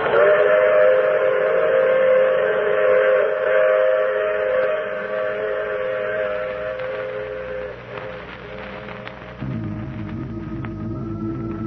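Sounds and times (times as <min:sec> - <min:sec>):
steam train whistle: 0:00.0 - 0:09.0.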